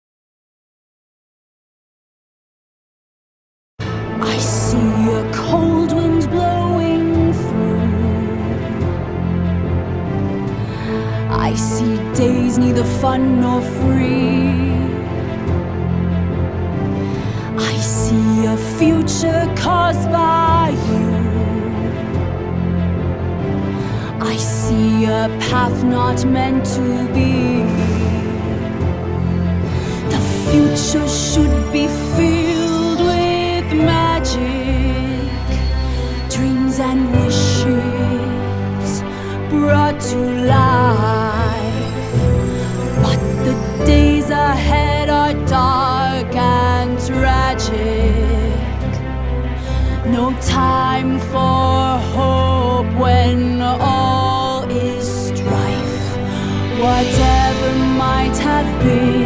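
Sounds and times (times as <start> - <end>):
orchestra playing a cover: 3.8 - 59.2
vocals: 3.8 - 59.2.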